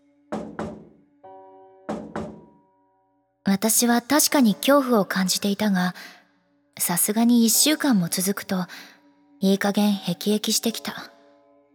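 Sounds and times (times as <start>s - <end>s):
knocking on a front door: 0.3s - 1.0s, 1.9s - 2.5s
speech: 3.5s - 6.2s, 6.8s - 11.1s.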